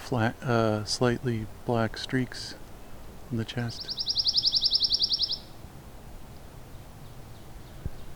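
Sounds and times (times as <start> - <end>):
quiet outdoor background: 0.0 - 8.1
speech: 0.1 - 2.6, 3.3 - 4.2
red-breasted nuthatch call: 3.6 - 5.6.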